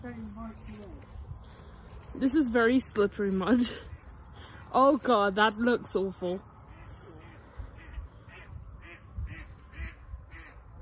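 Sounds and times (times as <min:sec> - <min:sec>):
speech: 0:00.0 - 0:01.4, 0:02.1 - 0:03.9, 0:04.7 - 0:06.5
low rumble of wind outdoors: 0:00.0 - 0:10.7
ducks quacking in short nasal calls: 0:06.7 - 0:10.7.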